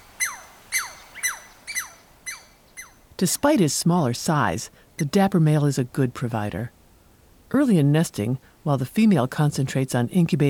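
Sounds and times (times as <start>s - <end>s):
Douglas squirrel squeaking as prey of a female Sharp-shinned Hawk: 0.0s - 3.0s
speech: 3.2s - 6.8s, 7.5s - 10.4s.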